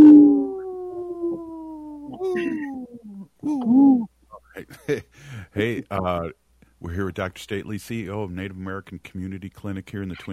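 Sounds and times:
wolves howling: 0.0s - 3.2s
speech: 5.6s - 10.3s.

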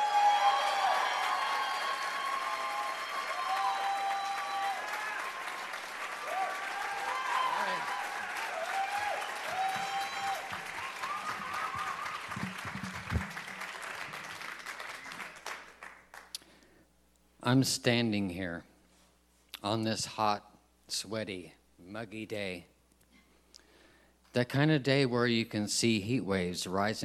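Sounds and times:
audience applauding a storytelling performance: 0.0s - 16.3s
speech: 17.5s - 18.7s, 19.6s - 22.7s, 24.4s - 27.0s.

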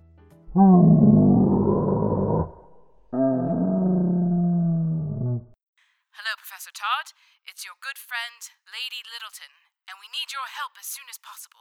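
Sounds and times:
dinosaur roar sound effect on a phone answering message: 0.5s - 5.6s
speech: 0.6s - 1.2s, 7.6s - 11.5s.

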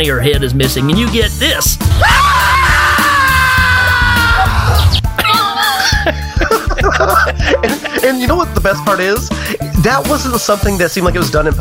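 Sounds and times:
speech: 0.0s - 2.5s, 6.0s - 11.5s
man screaming: 1.8s - 5.8s
man's ragged broken cries: 1.9s - 8.0s
laughter: 5.2s - 8.3s.

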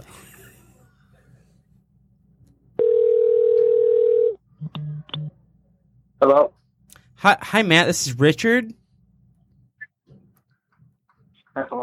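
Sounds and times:
telephone ringing tone before call connects: 2.8s - 4.4s
speech: 6.2s - 6.5s, 7.2s - 8.8s.

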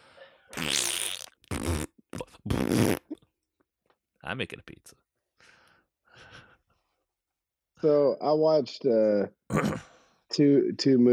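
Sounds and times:
loud buzzy fart noises: 0.5s - 3.2s
speech: 4.3s - 5.0s, 7.8s - 11.1s.

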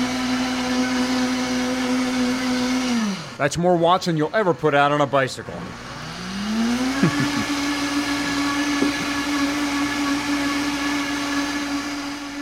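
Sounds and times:
high-powered blender running: 0.0s - 3.4s, 5.6s - 12.3s
speech: 3.4s - 5.9s
laughter: 6.9s - 9.2s
knocking thumps of contents churning in a blender: 8.1s - 10.0s.

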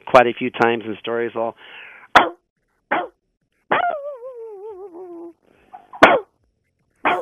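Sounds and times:
speech: 0.1s - 3.0s
person imitating a wavering howl-like whine: 3.7s - 5.4s
person imitating dog barks: 3.7s - 6.3s, 7.0s - 7.2s.

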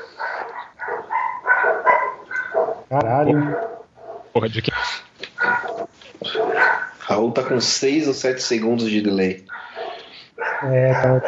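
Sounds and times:
neighbour's dog barking: 0.0s - 4.3s, 5.4s - 7.6s, 9.5s - 11.2s
speech: 2.9s - 3.7s, 4.4s - 5.1s, 7.1s - 9.5s, 10.6s - 11.2s.

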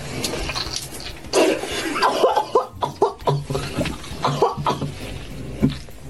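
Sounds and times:
woman choking and coughing after something goes down her windpipe: 1.3s - 5.0s.

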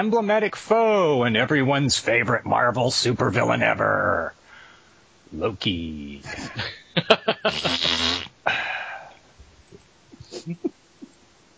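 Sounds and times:
speech: 0.0s - 4.4s, 5.3s - 8.6s, 10.4s - 10.7s
breathy exhale: 4.4s - 5.0s, 8.5s - 9.2s
short puffing noises: 7.5s - 8.3s
voice blowing a raspberry imitating a fart: 7.5s - 8.3s.

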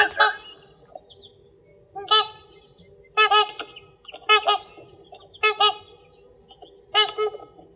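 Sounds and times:
Trumpeter Swan trumpet calls in a swamp in Vermont: 0.0s - 0.6s, 2.0s - 2.5s, 3.2s - 4.8s, 5.4s - 5.9s, 6.9s - 7.6s.

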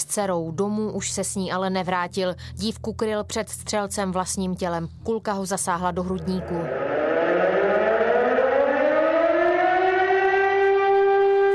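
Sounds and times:
speech: 0.1s - 7.0s
civil defense memorial siren wailing in open air at noon: 6.2s - 11.5s.

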